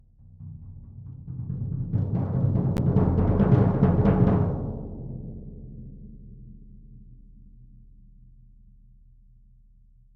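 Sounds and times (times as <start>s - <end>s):
bass drum roll: 1.0s - 5.2s.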